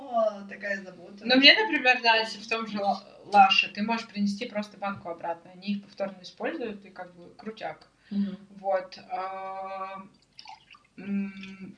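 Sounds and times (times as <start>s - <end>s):
speech: 0.6s - 10.2s, 11.0s - 11.7s
liquid pouring into a container: 10.2s - 11.6s
bubbly gurgling and dripping: 10.2s - 11.7s.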